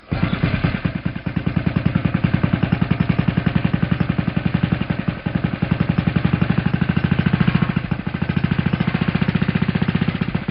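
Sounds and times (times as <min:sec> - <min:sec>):
fishing boat engine starting: 0:00.0 - 0:10.4.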